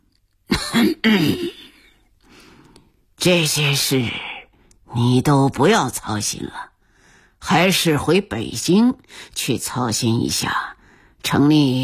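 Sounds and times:
stout man coughing heavily: 0:00.5 - 0:02.0
speech: 0:00.8 - 0:01.6, 0:03.2 - 0:04.3, 0:05.0 - 0:06.7, 0:07.4 - 0:11.8.

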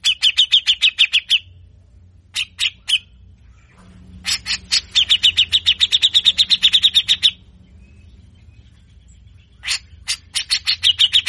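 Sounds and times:
grey-cheeked bulbul singing in harsh besetan rasping chatter: 0:00.0 - 0:01.6, 0:02.3 - 0:07.5, 0:09.4 - 0:11.2.

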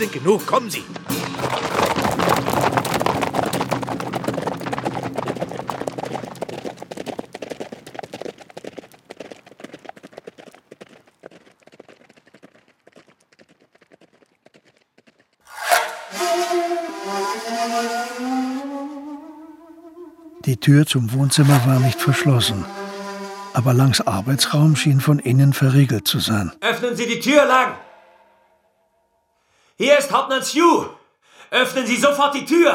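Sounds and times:
speech: 0:00.0 - 0:01.7, 0:20.6 - 0:22.8, 0:23.6 - 0:27.8, 0:29.8 - 0:32.7
horses' hooves clip-clopping: 0:00.9 - 0:15.4
loud tonal sound: 0:15.5 - 0:19.7, 0:21.1 - 0:25.4.

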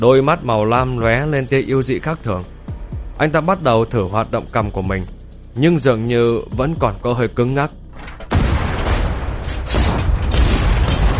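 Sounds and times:
speech: 0:00.0 - 0:02.6, 0:03.2 - 0:08.2
gunshots fired repeatedly: 0:08.3 - 0:11.1.

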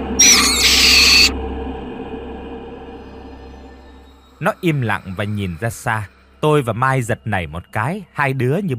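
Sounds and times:
barn owl hissing screech: 0:00.2 - 0:01.3
speech: 0:04.4 - 0:08.7.

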